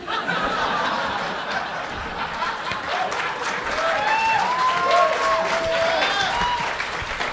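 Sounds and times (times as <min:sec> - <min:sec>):
scattered laughter: 0:00.0 - 0:03.5
room full of people applauding: 0:00.0 - 0:07.3
excited voices: 0:00.1 - 0:07.3.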